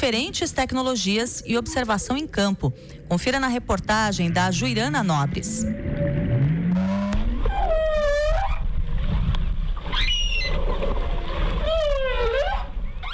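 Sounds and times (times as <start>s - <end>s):
speech: 0.0s - 6.2s
constant deep underwater rumble: 1.0s - 13.1s
humpback whale mother calling to calf: 5.8s - 8.7s, 9.8s - 13.1s.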